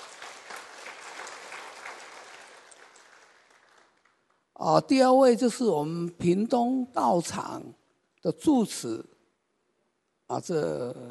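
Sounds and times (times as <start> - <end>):
audience applause at a morning forum in a Buddhist temple: 0.0 - 4.3
speech: 4.6 - 9.1, 10.3 - 11.0.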